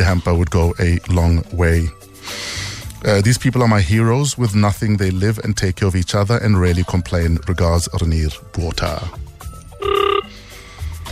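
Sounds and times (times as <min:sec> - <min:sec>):
speech: 0:00.0 - 0:09.2
telephone ringing on an outgoing call from a radio studio: 0:09.8 - 0:10.3.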